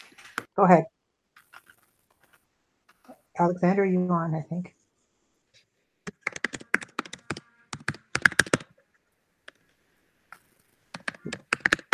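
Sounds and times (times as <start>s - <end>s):
speech: 0.6s - 1.0s, 3.4s - 4.8s
typing on a computer keyboard over an online call: 6.1s - 8.8s, 10.4s - 11.9s.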